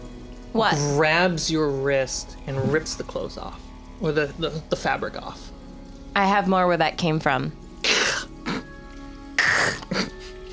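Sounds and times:
speech: 0.5 - 5.5, 6.2 - 7.6
person sneezing: 9.4 - 10.2.

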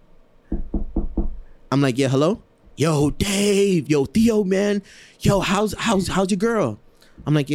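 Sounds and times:
heavy knocking on a door: 0.5 - 1.4
speech: 1.7 - 7.5.

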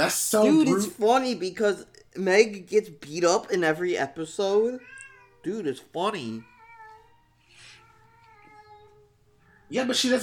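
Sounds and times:
speech: 0.0 - 6.5, 9.7 - 10.2
cat meowing in a drawn-out wavering cry: 4.8 - 5.5, 6.2 - 9.6.

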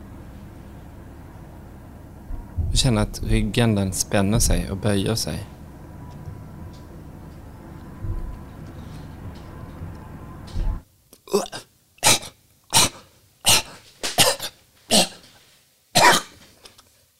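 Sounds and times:
low murky rumbling background: 0.0 - 10.8
speech: 2.8 - 5.5
cat hacking and coughing trying to bring up a hairball: 11.2 - 15.3, 16.0 - 16.4.

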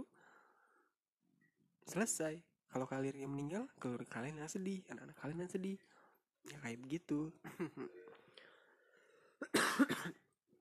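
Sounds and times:
speech: 1.9 - 8.0
laughter: 7.5 - 8.2
harsh rough coughing: 9.4 - 10.3.

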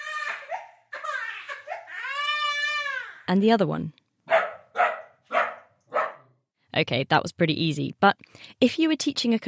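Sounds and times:
baby crying: 0.0 - 3.3
speech: 3.3 - 4.0, 6.8 - 9.4
dog barking: 4.3 - 6.4.

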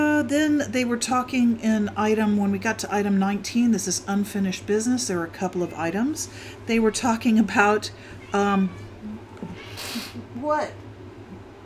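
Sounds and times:
low hum: 0.0 - 11.6
speech: 0.3 - 8.8, 9.9 - 10.8
cat meowing: 8.1 - 9.8.

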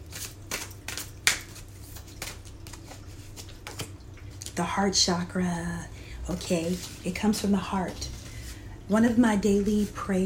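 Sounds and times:
deck of cards being shuffled: 0.0 - 4.0, 6.3 - 8.6
speech: 4.6 - 8.1, 8.9 - 10.2.

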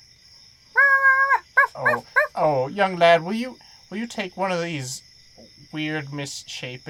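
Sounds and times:
dog barking in long whining calls: 0.8 - 2.4
speech: 2.7 - 5.1, 5.7 - 6.8.

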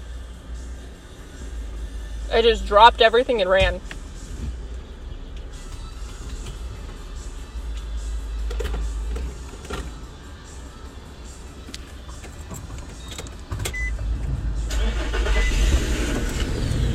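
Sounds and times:
car engine cranked with the ignition and starting: 0.0 - 16.9
speech: 2.3 - 3.9.

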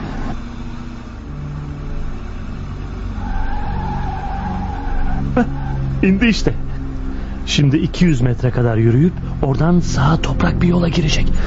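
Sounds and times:
squeal of brakes or tires: 0.0 - 8.1
minibus engine rumbling and slowing: 0.0 - 11.4
speech: 5.4 - 6.7, 7.5 - 11.4.

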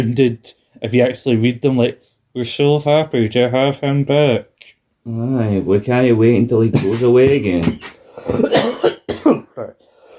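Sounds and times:
speech: 0.0 - 8.8
man coughing hard: 8.2 - 9.8.

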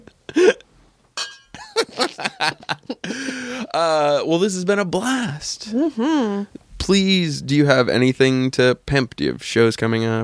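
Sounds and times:
speech: 0.3 - 0.6, 2.4 - 10.2
glasses clinking together in a toast: 1.2 - 1.7
laughter: 1.6 - 3.8.

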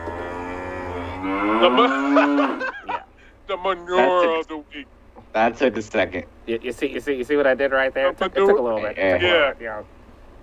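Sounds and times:
cow mooing: 0.0 - 2.8
speech: 1.2 - 2.7, 3.5 - 10.0
laughter: 1.5 - 3.3.

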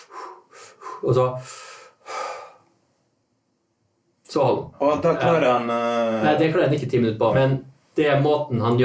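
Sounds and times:
person's forceful breaths and exhale before a breath-hold: 0.0 - 2.8
speech: 1.0 - 1.6, 4.4 - 8.8.

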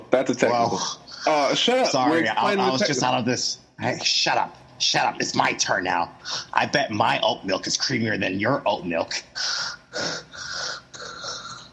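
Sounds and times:
speech: 0.1 - 10.5
heavy raspy wheezy breathing right up against a microphone: 9.4 - 11.6.

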